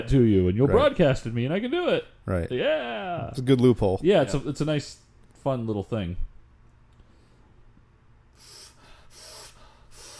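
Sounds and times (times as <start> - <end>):
speech: 0.0 - 6.3
heavy dramatic breathing: 8.3 - 10.1.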